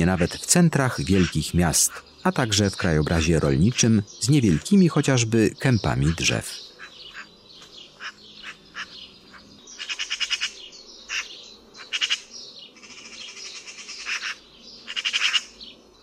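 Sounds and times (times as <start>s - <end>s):
Eurasian magpie harsh rattling chatter: 0.0s - 2.1s, 2.8s - 4.8s, 8.0s - 9.0s, 9.8s - 12.3s, 12.9s - 15.6s
speech: 0.0s - 6.7s.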